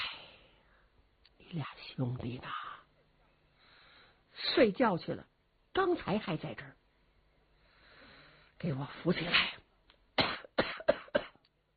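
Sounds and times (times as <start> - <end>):
speech: 1.5 - 2.7, 4.4 - 6.8, 8.6 - 9.6
old man coughing: 10.2 - 11.4.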